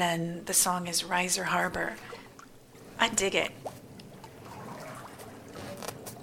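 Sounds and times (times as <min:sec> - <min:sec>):
speech: 0:00.0 - 0:02.2, 0:03.0 - 0:03.8
water sloshing and lapping in a bathtub as a man sits in it: 0:00.6 - 0:06.2
small gurgles and drips of bathtub water: 0:01.5 - 0:06.2.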